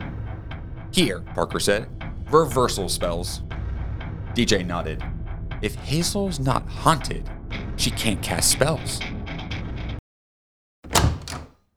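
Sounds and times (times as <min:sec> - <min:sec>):
speech: 0:00.9 - 0:03.6, 0:04.4 - 0:09.2
door swinging open with a muffled creak and rattle: 0:10.9 - 0:11.6.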